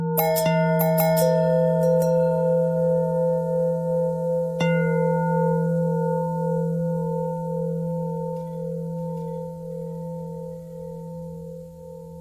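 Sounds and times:
long bell ringing: 0.2s - 11.4s.

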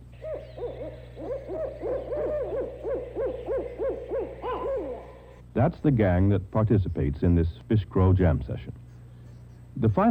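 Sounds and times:
Barred Owl hooting and cackling: 0.0s - 5.4s
speech: 5.6s - 8.8s, 9.8s - 10.0s.

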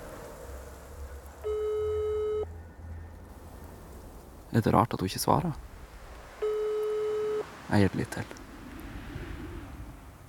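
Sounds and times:
faint hiss: 0.0s - 10.2s
telephone ring-back tone while calling a number: 1.4s - 2.5s, 6.4s - 7.4s
speech: 4.6s - 5.7s, 7.7s - 8.4s.

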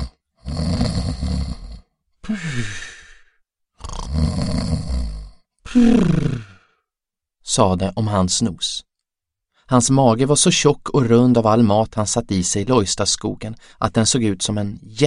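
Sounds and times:
raspy snores: 0.0s - 1.9s, 3.8s - 6.7s
speech: 2.3s - 2.9s, 5.8s - 6.2s, 7.6s - 8.9s, 9.7s - 15.0s.

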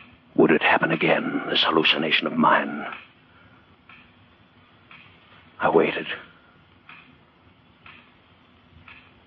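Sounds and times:
clock ticking: 0.0s - 3.2s, 3.8s - 4.2s, 4.8s - 6.2s, 6.8s - 9.2s
speech: 0.4s - 3.0s, 5.6s - 6.3s.

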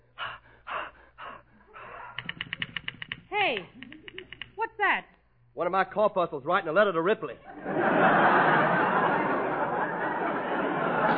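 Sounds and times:
person taking deep breaths before singing: 0.0s - 3.0s
speech: 3.4s - 3.8s, 4.8s - 8.4s
laughter: 7.4s - 11.1s.

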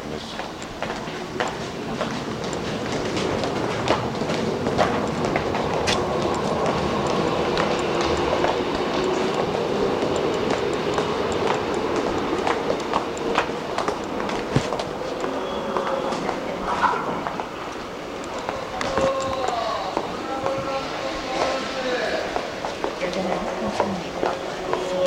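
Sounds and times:
train passing through a station into a tunnel: 0.0s - 25.0s.

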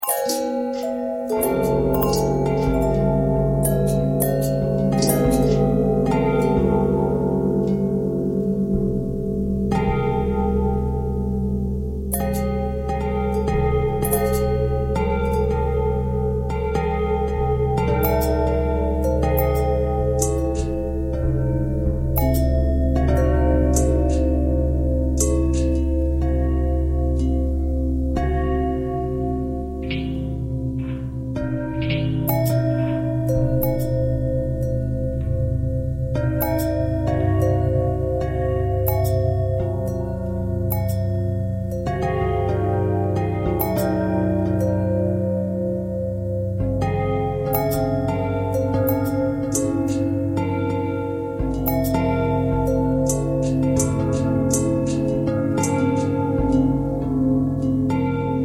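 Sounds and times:
long bell thread pentatonic: 0.0s - 58.4s.

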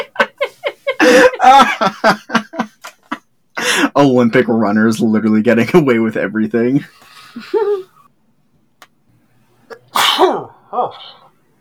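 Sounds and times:
laughter: 0.0s - 3.2s
speech: 1.4s - 2.2s, 4.0s - 7.8s
loud sneeze: 9.7s - 10.6s.

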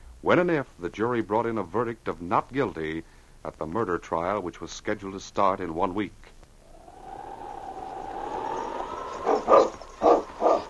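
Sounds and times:
speech: 0.2s - 6.3s
faint steady high whine or howl: 6.6s - 10.6s
sled team huskies barking: 7.0s - 10.6s.

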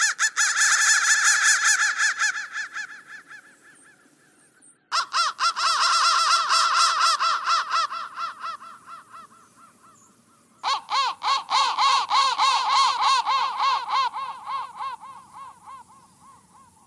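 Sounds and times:
crow cawing: 0.0s - 4.3s, 4.9s - 16.8s.

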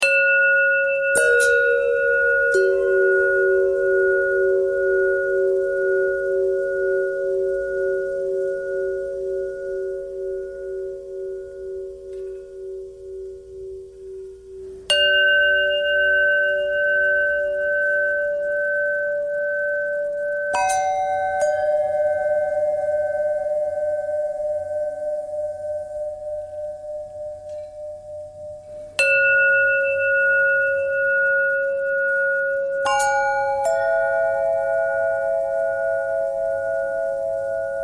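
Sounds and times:
long bell tones with pitch bend: 0.0s - 37.8s.

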